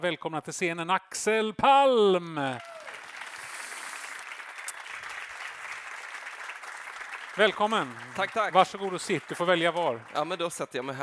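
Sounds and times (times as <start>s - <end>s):
speech: 0.0s - 2.8s, 7.4s - 11.0s
room full of people clapping: 2.5s - 11.0s.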